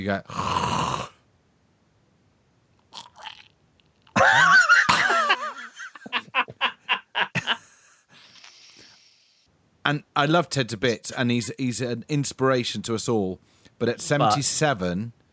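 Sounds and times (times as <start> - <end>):
speech: 0.0 - 0.6, 9.9 - 15.2
voice imitating a snore: 0.3 - 1.2
laughter: 4.2 - 8.0.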